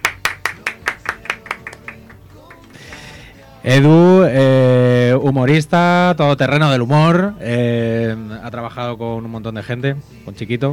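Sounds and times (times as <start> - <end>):
studio audience clapping to welcome talk show guests: 0.0 - 3.1
speech: 3.6 - 10.7.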